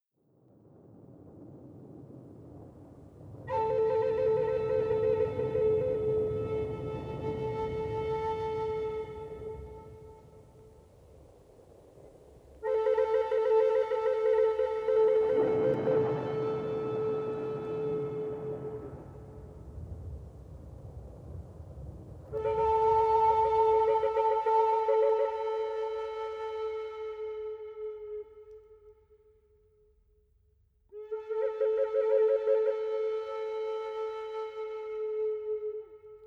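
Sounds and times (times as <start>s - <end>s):
thunder on a warm summer evening: 0.3s - 26.4s
Native American flutes: 3.5s - 10.7s, 12.6s - 20.0s, 22.3s - 29.4s, 30.9s - 36.2s.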